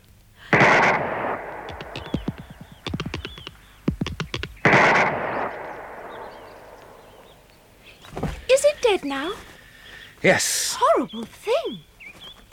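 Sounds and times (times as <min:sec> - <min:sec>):
gunshots fired at a thing in a garden: 0:00.4 - 0:07.7
sharp clattering clicks: 0:00.5 - 0:07.6
speech: 0:08.9 - 0:09.5, 0:10.2 - 0:11.9.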